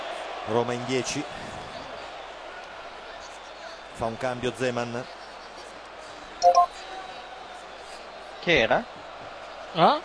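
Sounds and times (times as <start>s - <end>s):
speech: 0.4s - 1.5s, 4.0s - 5.2s, 8.4s - 9.0s, 9.7s - 10.0s
digital TV tuner scan completion beeps: 6.4s - 6.7s.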